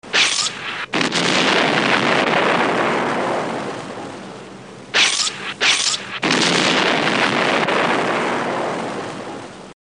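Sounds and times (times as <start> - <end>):
ufo laser blasts: 0.0 - 3.5, 4.9 - 8.8
explosions: 0.0 - 4.1, 5.0 - 9.5.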